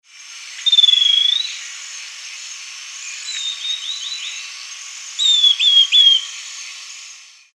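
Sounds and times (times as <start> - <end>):
Pachyramphus castaneus: 0.6 - 2.4, 3.0 - 6.9.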